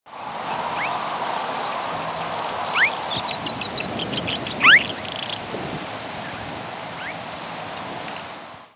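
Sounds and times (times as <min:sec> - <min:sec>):
steady low rushing background noise: 0:00.1 - 0:08.7
lark bunting singing in Texas: 0:00.5 - 0:05.6, 0:06.2 - 0:07.2.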